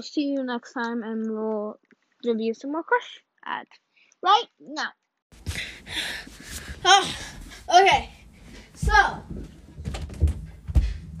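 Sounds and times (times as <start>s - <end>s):
speech: 0.0s - 8.2s, 8.8s - 9.4s
closed door pushed against its frame: 8.9s - 11.1s.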